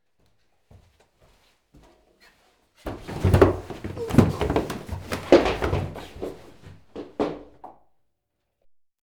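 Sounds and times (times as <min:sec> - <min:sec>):
man falling down stairs: 0:02.9 - 0:07.8.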